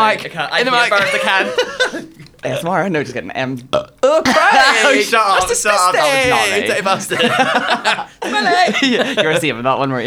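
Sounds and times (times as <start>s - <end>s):
laughter: 0.0s - 10.0s
speech: 0.0s - 10.0s
croaky voiced burp after an energy drink: 3.6s - 5.0s.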